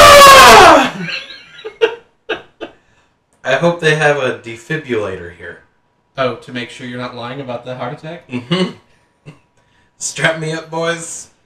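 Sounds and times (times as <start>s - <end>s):
man screaming in pain: 0.0s - 1.0s
speech: 3.5s - 9.4s, 10.0s - 11.3s.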